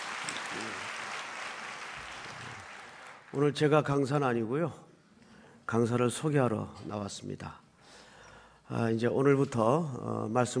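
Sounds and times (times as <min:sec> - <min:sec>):
room full of people clapping: 0:00.0 - 0:03.4
speech: 0:03.3 - 0:04.8, 0:05.7 - 0:07.6, 0:08.7 - 0:10.5.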